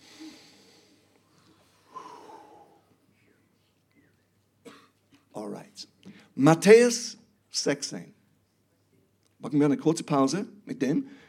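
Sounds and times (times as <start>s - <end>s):
slow deep breath in and out: 0.0s - 3.0s, 11.1s - 11.2s
speech: 5.5s - 8.2s, 9.4s - 11.2s.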